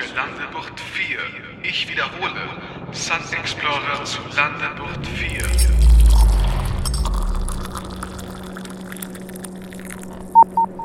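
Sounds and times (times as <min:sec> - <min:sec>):
speech: 0:00.2 - 0:05.9
low droning hum: 0:04.6 - 0:10.8
incoming-message alert short electronic beeps: 0:10.4 - 0:10.8.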